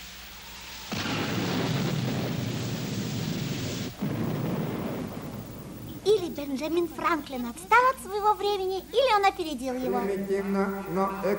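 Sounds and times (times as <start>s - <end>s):
rolling thunder during a thunderstorm: 0.9s - 6.2s
speech: 6.4s - 11.3s.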